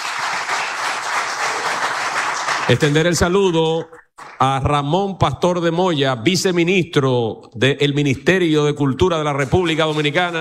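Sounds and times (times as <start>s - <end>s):
audience applause at a Dominican cultural ceremony: 0.0s - 3.2s, 9.6s - 10.4s
speech: 2.7s - 10.4s.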